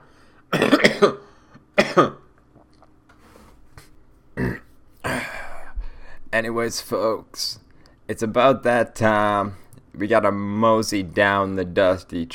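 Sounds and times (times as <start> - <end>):
loud throaty burps: 0.5 - 1.2, 1.8 - 2.3, 4.4 - 5.3
speech: 1.0 - 1.2, 2.0 - 2.2, 6.4 - 12.3.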